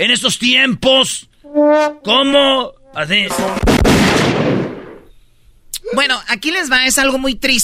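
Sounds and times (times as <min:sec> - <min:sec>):
speech: 0:00.0 - 0:04.5, 0:05.9 - 0:07.6
firing-squad volley of an execution by firing squad in the United States: 0:03.4 - 0:05.0.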